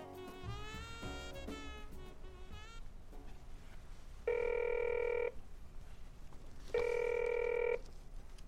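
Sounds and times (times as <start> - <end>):
telephone ringing during a call: 4.2 - 5.4, 6.7 - 7.9.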